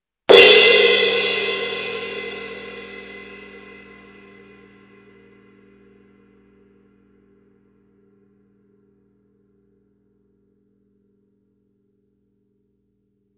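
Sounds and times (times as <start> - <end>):
symphonic suspended cymbal: 0.3 - 6.2.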